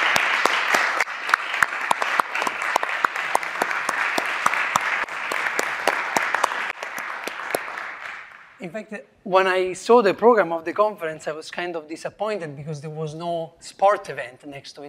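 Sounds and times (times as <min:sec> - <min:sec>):
room full of people applauding: 0:00.0 - 0:08.6
speech: 0:08.6 - 0:14.8.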